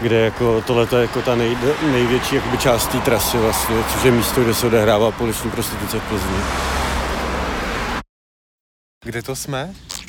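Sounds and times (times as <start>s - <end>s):
speech: 0.0s - 6.8s, 9.0s - 10.0s
road traffic roar at a bus station in Plzeň: 0.0s - 8.0s.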